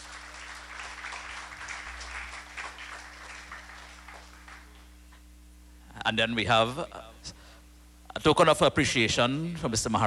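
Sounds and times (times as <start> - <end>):
room full of people clapping: 0.0 - 5.0
low electrical hum: 0.0 - 10.0
speech: 6.0 - 7.4, 8.2 - 10.0.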